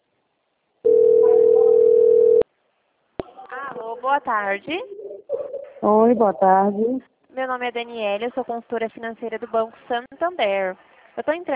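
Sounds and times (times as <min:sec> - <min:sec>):
telephone tone signalling an incoming call: 0:00.9 - 0:02.4
speech: 0:04.0 - 0:05.0, 0:05.8 - 0:11.5.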